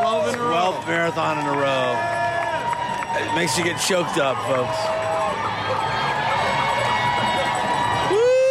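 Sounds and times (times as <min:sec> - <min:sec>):
large outdoor crowd of marathon spectators cheering along the race route: 0:00.0 - 0:08.4
speech: 0:00.8 - 0:02.2, 0:03.2 - 0:05.1.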